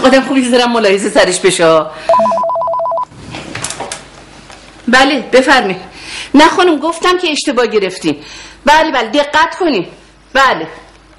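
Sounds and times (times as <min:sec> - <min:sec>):
speech: 0:00.0 - 0:02.4, 0:04.9 - 0:10.8
telephone ringing indoors with a two-tone trill: 0:02.1 - 0:03.1.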